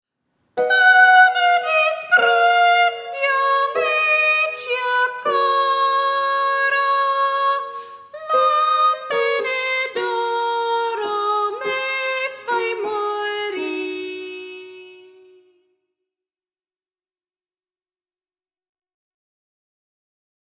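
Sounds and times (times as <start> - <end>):
boy soprano singing in Italian: 0.6 - 15.6.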